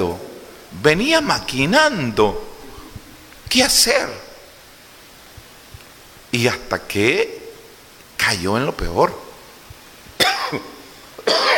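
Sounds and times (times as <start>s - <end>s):
speech: 0.0s - 2.5s, 3.5s - 4.2s, 6.3s - 7.4s, 8.2s - 9.2s, 10.5s - 10.7s, 11.3s - 11.5s
person coughing because of a fan: 10.2s - 11.5s.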